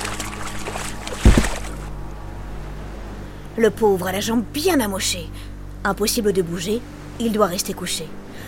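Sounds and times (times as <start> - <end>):
heavy splash and knock of a dugout canoe: 0.0 - 1.9
lapping water from a dugout canoe moving through water: 0.0 - 1.9
speech: 3.6 - 8.4.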